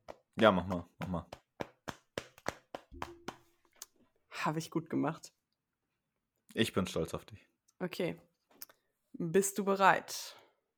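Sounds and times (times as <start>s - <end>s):
hands patting someone's shoulder: 0.0s - 3.7s
speech: 0.4s - 1.4s, 4.4s - 5.4s, 6.6s - 8.3s, 9.2s - 10.4s.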